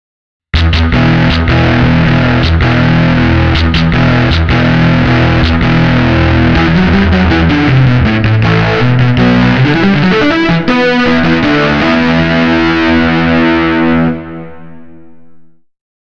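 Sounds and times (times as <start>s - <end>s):
guitar: 0.5s - 15.6s.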